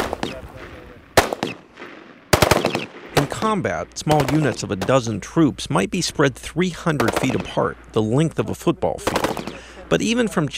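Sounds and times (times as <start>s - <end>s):
gunfire from Marines at a humid target practice range in North Carolina: 0.0s - 5.0s, 7.0s - 7.6s, 9.0s - 9.7s
speech: 3.4s - 10.5s.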